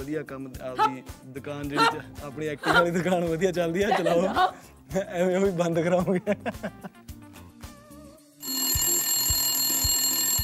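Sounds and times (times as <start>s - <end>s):
speech: 0.0s - 7.0s
laughter: 1.8s - 4.7s, 5.6s - 7.0s
telephone ringing with a bright bell tone: 8.4s - 10.4s.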